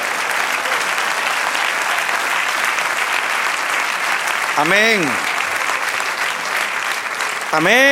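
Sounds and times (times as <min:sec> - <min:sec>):
large church audience applauding: 0:00.0 - 0:07.8
speech: 0:04.6 - 0:05.3, 0:07.5 - 0:07.8.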